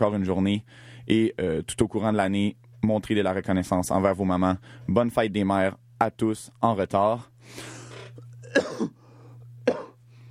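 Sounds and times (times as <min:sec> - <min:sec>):
speech: 0:00.0 - 0:07.8
steady low electrical hum: 0:00.0 - 0:10.2
person coughing: 0:07.8 - 0:09.0, 0:09.6 - 0:10.0.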